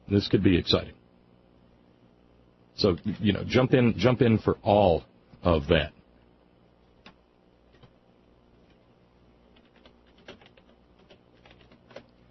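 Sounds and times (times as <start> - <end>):
low hiss: 0.0 - 12.2
speech: 0.1 - 1.0, 2.8 - 6.0
person typing on a keyboard: 9.5 - 12.2.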